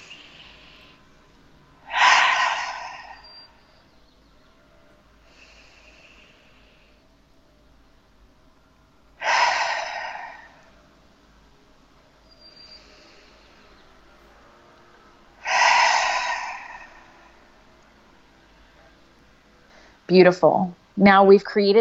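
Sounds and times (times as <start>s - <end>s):
deep breaths in through nose and out through mouth: 0.0s - 3.9s, 4.6s - 7.6s, 9.1s - 11.0s, 12.3s - 14.2s, 15.4s - 20.1s
speech: 20.1s - 21.8s.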